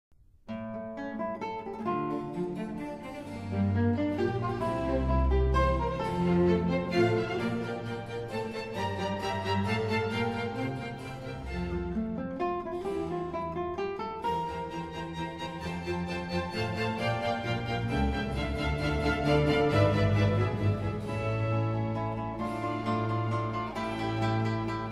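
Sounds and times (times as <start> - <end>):
concerto for guitar and string orchestra: 0.5 - 24.9.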